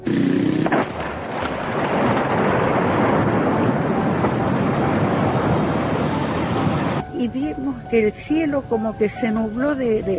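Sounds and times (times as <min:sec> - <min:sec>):
crackling debris: 0:00.0 - 0:07.0
loud explosion: 0:00.0 - 0:07.0
rumbling roar: 0:00.0 - 0:07.0
speech: 0:07.9 - 0:10.1.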